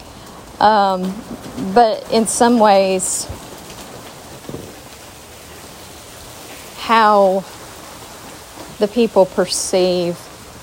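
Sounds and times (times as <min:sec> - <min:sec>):
steady rain pouring and pattering on surfaces: 0:00.0 - 0:10.6
speech: 0:00.6 - 0:03.5, 0:06.9 - 0:07.6, 0:08.8 - 0:10.3
loud splash or thud: 0:04.5 - 0:04.8.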